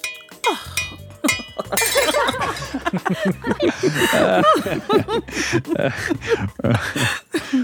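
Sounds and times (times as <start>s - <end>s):
wine glass knocked over and shattering on a hard floor: 0.0s - 2.9s
several people chuckling and laughing: 1.2s - 7.6s.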